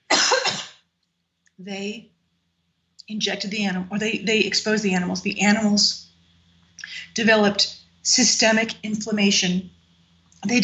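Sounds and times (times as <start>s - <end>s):
person coughing harshly: 0.1s - 0.8s
speech: 1.6s - 2.2s, 3.1s - 6.1s, 7.1s - 9.8s, 10.4s - 10.6s.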